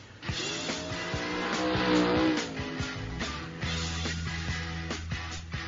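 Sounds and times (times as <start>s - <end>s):
steady droning engine hum: 0.0s - 5.5s
race car engine roaring past: 0.2s - 4.7s.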